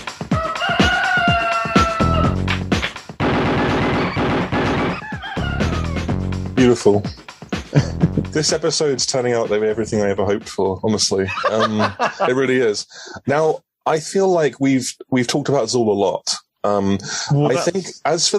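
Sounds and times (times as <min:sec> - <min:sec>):
sped-up cockerel crowing in a squeaky high-pitched voice: 0:00.2 - 0:02.6, 0:04.8 - 0:06.3
sharp whacks: 0:02.5 - 0:04.9
speech: 0:06.7 - 0:18.3
laughter: 0:07.7 - 0:08.4, 0:11.2 - 0:12.7, 0:17.2 - 0:17.9.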